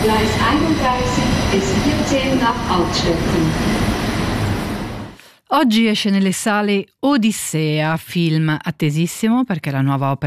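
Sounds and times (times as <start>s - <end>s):
speech: 0.0s - 4.1s, 5.5s - 10.2s
faint tonal whines of the train: 0.0s - 5.2s
train departing from a station platform: 0.0s - 5.2s.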